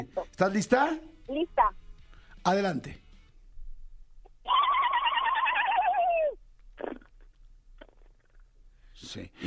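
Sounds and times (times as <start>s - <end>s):
speech: 0.0s - 1.8s, 2.4s - 3.0s, 9.0s - 9.4s
person imitating pigeon cooing over a radio phone call: 4.5s - 7.0s.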